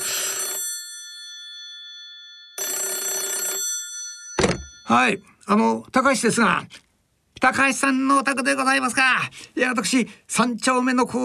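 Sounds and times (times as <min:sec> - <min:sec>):
telephone bell ringing: 0:00.0 - 0:05.3
speech: 0:04.9 - 0:06.8, 0:07.4 - 0:11.2.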